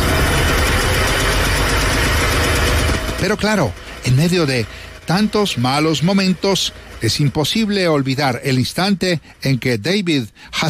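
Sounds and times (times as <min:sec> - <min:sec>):
East German small car engine idling: 0:00.0 - 0:10.6
speech: 0:03.2 - 0:10.6.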